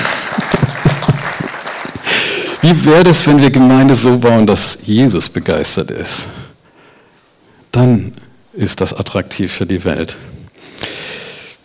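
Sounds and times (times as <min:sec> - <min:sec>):
light scattered audience applause: 0:00.0 - 0:02.8
speech: 0:02.6 - 0:06.5, 0:07.7 - 0:10.4.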